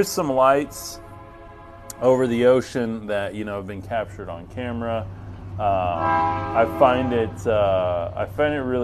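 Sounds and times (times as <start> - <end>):
speech: 0.0 - 1.0, 2.0 - 8.8
train horn blasting: 0.0 - 3.7, 5.2 - 8.1
train passing with a low rumble: 0.0 - 8.8.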